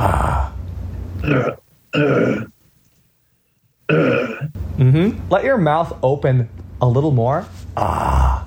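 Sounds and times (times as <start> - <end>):
open-mouthed throat clearing as a voice exercise: 1.2 - 2.5, 3.9 - 4.6
speech: 1.2 - 2.5, 3.9 - 8.2.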